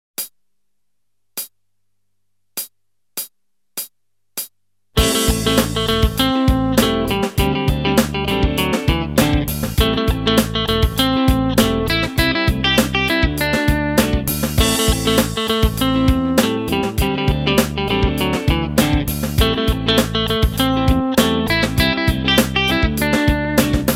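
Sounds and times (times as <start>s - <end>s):
guitar playing a Dorian mode scale: 5.0s - 23.9s.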